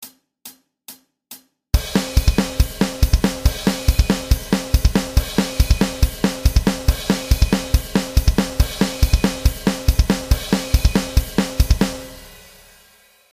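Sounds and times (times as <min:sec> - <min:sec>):
thrash bass: 0:01.8 - 0:12.3.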